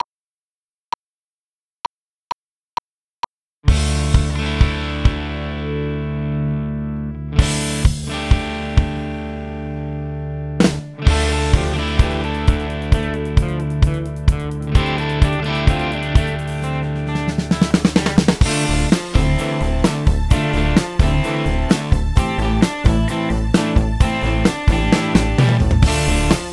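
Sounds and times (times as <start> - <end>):
post disco drums: 3.7 - 5.8, 7.4 - 9.5, 10.6 - 26.5
post disco guitar: 3.7 - 26.5.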